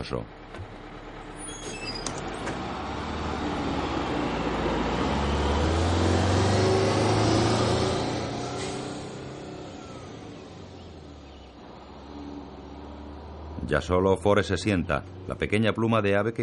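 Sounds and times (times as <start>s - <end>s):
speech: 0.0s - 0.7s, 13.7s - 16.4s
school bus engine rumbling: 0.0s - 16.4s
faint high squeaks: 1.4s - 2.4s.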